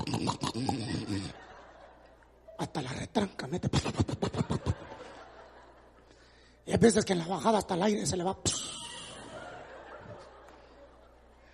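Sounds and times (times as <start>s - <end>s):
voice imitating a man snoring: 0.0s - 1.3s
laughter: 0.0s - 2.8s, 3.8s - 6.2s, 8.5s - 11.5s
speech: 0.2s - 0.9s, 2.7s - 4.8s, 6.7s - 8.8s.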